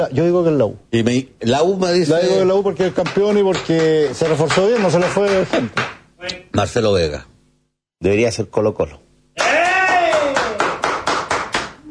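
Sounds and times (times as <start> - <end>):
speech: 0.0 - 7.3, 8.0 - 9.0
rhythmic clapping: 2.4 - 6.1, 9.4 - 11.8
drawn-out vocal cheer gliding downward: 9.4 - 10.8.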